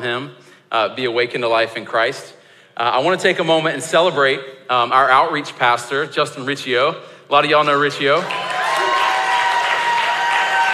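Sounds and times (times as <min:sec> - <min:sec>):
speech: 0:00.0 - 0:08.4
church congregation applauding: 0:08.1 - 0:10.7.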